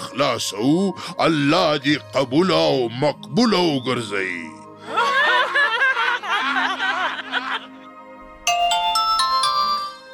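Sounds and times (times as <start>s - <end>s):
speech: 0.2s - 5.1s
laughter: 4.8s - 8.0s
phone ringtone with a warbling electronic melody: 8.4s - 10.1s
brighter chiming phrase: 8.5s - 10.1s.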